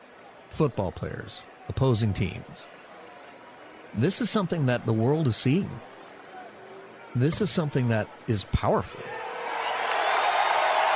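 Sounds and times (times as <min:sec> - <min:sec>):
speech: 0:00.5 - 0:02.8, 0:03.9 - 0:05.9, 0:07.1 - 0:09.2
large stadium crowd applauding and cheering: 0:09.0 - 0:10.9.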